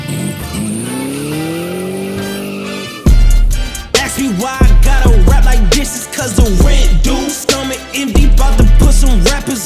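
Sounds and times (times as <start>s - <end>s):
car tires squealing while burning rubber: 0.0s - 3.1s
speech: 4.2s - 9.6s.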